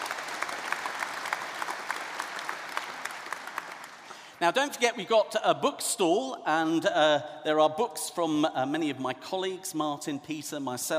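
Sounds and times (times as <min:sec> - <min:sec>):
audience applauding: 0:00.0 - 0:04.4
speech: 0:04.4 - 0:10.9.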